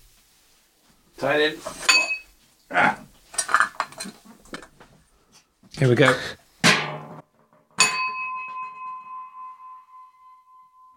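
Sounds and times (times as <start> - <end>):
speech: 1.2 - 1.9, 2.7 - 3.1, 4.0 - 4.2, 5.8 - 6.4
crab bell hand bell clanging: 7.8 - 10.9.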